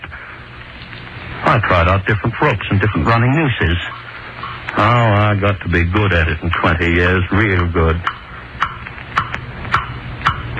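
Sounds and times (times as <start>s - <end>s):
speech: 1.5s - 4.0s, 4.8s - 8.2s
clock ticking: 8.0s - 10.5s.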